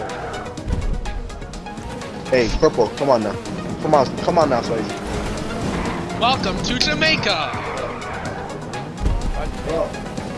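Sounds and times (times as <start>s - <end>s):
video game Baja truck engine rumble while driving and skidding: 0.0s - 10.3s
sudden low thump: 0.6s - 1.4s, 9.0s - 9.5s
speech: 2.3s - 5.0s, 6.2s - 7.7s, 9.7s - 10.0s.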